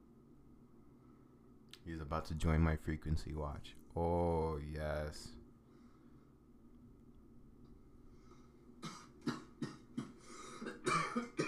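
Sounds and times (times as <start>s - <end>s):
speech: 1.7s - 5.4s
harsh hacking coughing fit after smoking: 8.8s - 11.4s.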